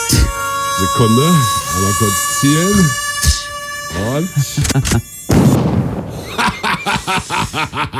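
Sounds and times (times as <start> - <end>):
high mosquito whine: 0.0 - 5.6, 6.2 - 7.8
sharp noisy burst: 0.0 - 7.9
speech: 0.8 - 3.0, 4.0 - 5.1, 7.1 - 7.9
person snickering with rhythmic laughter: 4.0 - 5.1, 6.1 - 7.9.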